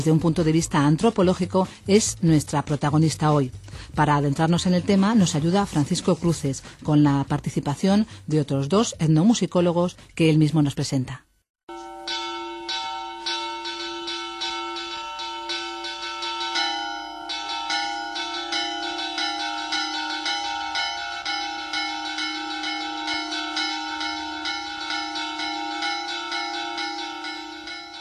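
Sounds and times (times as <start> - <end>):
speech: 0.0 - 11.3
church bells ringing: 11.7 - 27.9.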